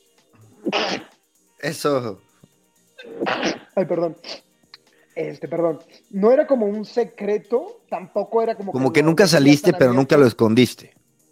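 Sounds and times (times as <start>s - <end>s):
person sneezing: 0.5s - 1.1s, 3.0s - 4.4s
speech: 1.6s - 2.3s, 3.0s - 4.4s, 5.2s - 11.0s.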